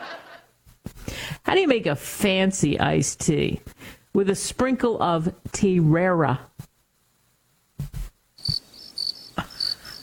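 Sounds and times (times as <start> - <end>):
speech: 1.5 - 6.5
soft thumps: 7.8 - 8.6
crickets chirping: 8.4 - 10.0.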